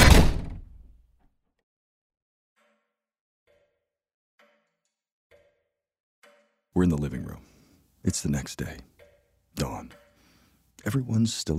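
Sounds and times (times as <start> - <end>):
door forced shut against wind with a heavy thud: 0.0 - 0.9
speech: 6.8 - 9.0, 9.6 - 10.0, 10.8 - 11.5.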